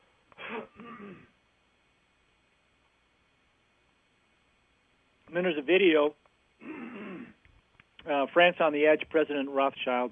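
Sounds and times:
throat clearing: 0:00.4 - 0:01.3, 0:06.6 - 0:07.4
speech: 0:00.5 - 0:01.3, 0:05.3 - 0:06.9, 0:08.0 - 0:10.1.

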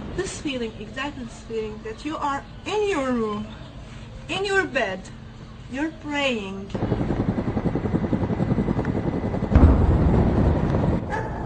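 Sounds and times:
speech: 0:00.2 - 0:03.6, 0:04.3 - 0:07.2
helicopter rotor chop close overhead: 0:06.8 - 0:11.1.

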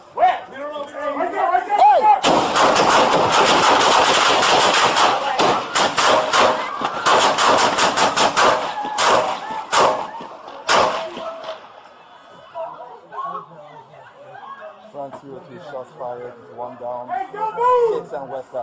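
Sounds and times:
people yelling: 0:00.0 - 0:02.3, 0:04.8 - 0:14.9, 0:17.1 - 0:18.1
people shouting: 0:01.2 - 0:02.3, 0:04.7 - 0:14.8
rapid volley of gunshots: 0:02.2 - 0:11.6.

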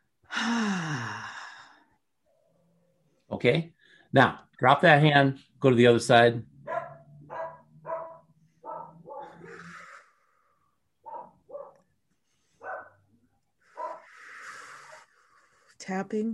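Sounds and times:
speech: 0:03.4 - 0:06.5, 0:15.9 - 0:16.3
dog barking outdoors: 0:06.6 - 0:09.6, 0:11.0 - 0:11.9, 0:12.6 - 0:13.1, 0:13.8 - 0:14.1.

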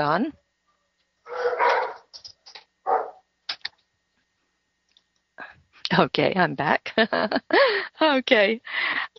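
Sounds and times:
speech: 0:00.0 - 0:00.4, 0:05.9 - 0:09.1
wolf dogs barking excitedly: 0:01.2 - 0:02.2, 0:02.8 - 0:03.3.

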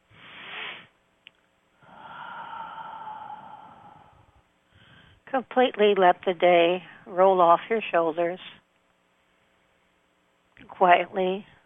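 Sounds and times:
deep breathing during a guided relaxation exercise: 0:01.8 - 0:05.3
speech: 0:05.3 - 0:08.6, 0:10.8 - 0:11.5.

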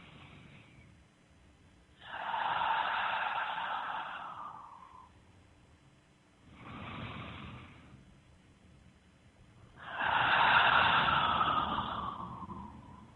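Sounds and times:
slow deep breaths: 0:00.0 - 0:01.3, 0:01.9 - 0:05.4, 0:06.4 - 0:08.4, 0:09.5 - 0:13.1.

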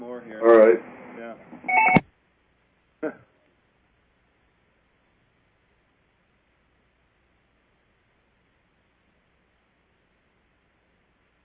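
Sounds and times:
telephone line signal announcing an incoming caller: 0:01.7 - 0:02.0.

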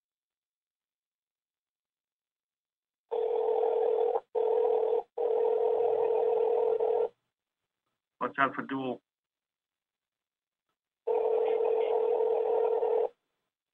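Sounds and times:
electronic phone ringing over a call line: 0:03.1 - 0:07.2, 0:11.0 - 0:13.2
speech: 0:08.3 - 0:09.1.

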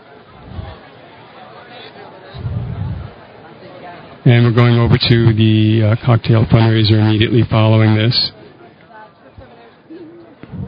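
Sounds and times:
dense crowd chatter from a huge crowd: 0:00.0 - 0:10.6
low rumbles and bumps: 0:02.4 - 0:03.2
speech: 0:04.2 - 0:08.4.

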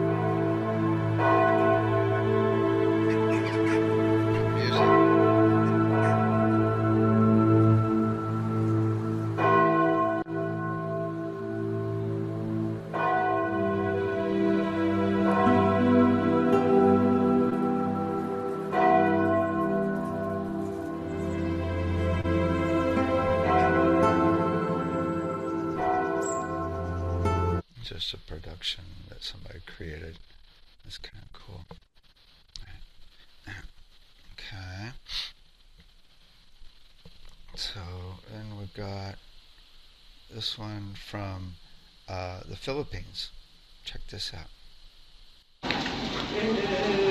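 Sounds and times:
large church bells in England ringing for a ceremony: 0:00.0 - 0:27.6
speech: 0:40.4 - 0:44.6, 0:46.4 - 0:47.0.

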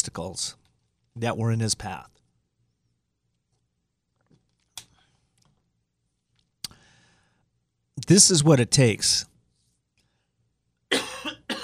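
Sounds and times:
speech: 0:00.2 - 0:00.6, 0:01.2 - 0:02.2, 0:08.0 - 0:09.3
person clearing throat: 0:10.9 - 0:11.6
person coughing: 0:10.9 - 0:11.6.

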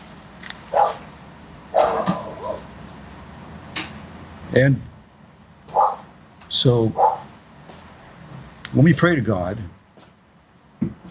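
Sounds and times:
faint low hum: 0:00.0 - 0:11.0
dog barking in bursts: 0:00.7 - 0:01.0, 0:01.7 - 0:02.7, 0:05.7 - 0:06.1, 0:07.0 - 0:07.3
speech: 0:04.5 - 0:04.9, 0:06.6 - 0:07.0, 0:08.8 - 0:09.8.

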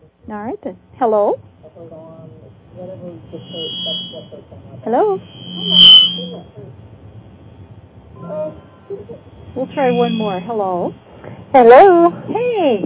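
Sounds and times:
speech: 0:00.3 - 0:02.2, 0:02.8 - 0:06.8, 0:08.2 - 0:12.8
steady high-pitched electronic beeps: 0:03.2 - 0:06.5, 0:09.6 - 0:10.6.

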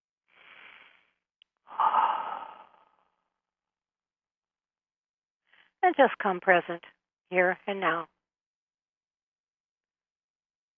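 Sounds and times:
deep breath during a relaxation exercise: 0:00.3 - 0:03.4
speech: 0:05.8 - 0:08.1.

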